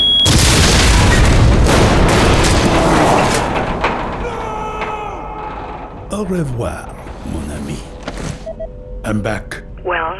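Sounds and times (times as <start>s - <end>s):
booby-trapped briefcase exploding at a gate: 0.2s - 6.2s
speech: 6.2s - 7.9s, 9.1s - 10.0s.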